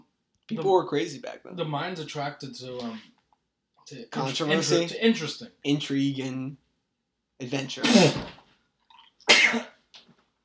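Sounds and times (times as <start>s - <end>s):
speech: 0.5s - 3.2s, 3.9s - 6.6s, 7.4s - 8.4s
person sneezing: 7.8s - 8.4s, 9.3s - 9.8s.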